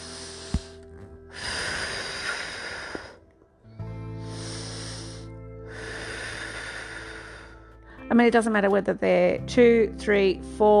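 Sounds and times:
person doing slow deep breathing exercise: 0.0s - 3.2s, 3.8s - 8.1s
speech: 8.1s - 10.7s.

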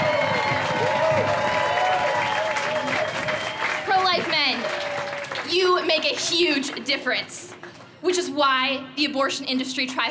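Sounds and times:
audience cheers and whoops: 0.0s - 5.4s
large audience applauding: 0.0s - 6.9s
speech: 6.0s - 10.0s.

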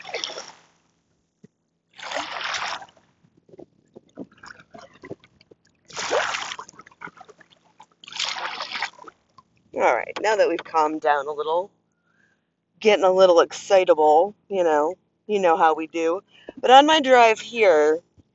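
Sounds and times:
water splashing at a lake: 0.0s - 0.8s, 2.0s - 11.2s
speech: 9.8s - 11.8s, 12.8s - 18.0s.

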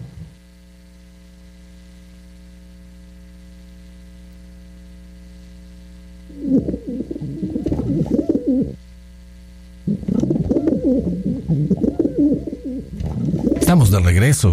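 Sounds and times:
pigeons cooing: 6.3s - 8.8s, 9.9s - 13.6s
speech: 13.7s - 14.5s.

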